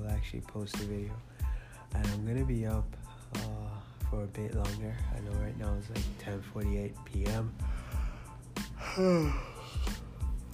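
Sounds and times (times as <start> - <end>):
speech: 0.2 - 7.8, 9.0 - 10.0
yawn: 8.8 - 9.8.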